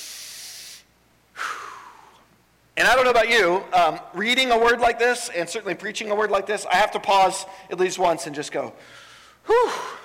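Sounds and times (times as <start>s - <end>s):
deliberate deep breath demonstrated during a church sermon: 0.0s - 2.3s, 8.8s - 10.0s
speech: 2.8s - 10.0s.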